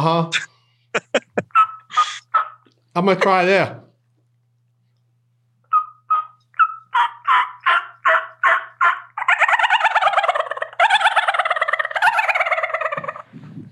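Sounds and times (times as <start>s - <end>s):
speech: 0.0s - 0.5s, 3.0s - 3.9s
laughter: 0.0s - 2.2s
person's voice imitating turkey yelps and gobble: 0.4s - 2.7s, 5.7s - 13.3s.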